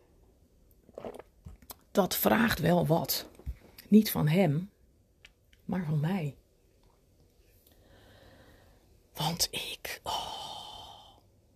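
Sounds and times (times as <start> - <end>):
wet mouth and swallowing sounds: 0.7 - 1.9
person sipping tea with a soft slurp: 0.9 - 1.7
speech: 2.0 - 3.3, 3.9 - 4.7, 5.7 - 6.4, 9.2 - 10.2.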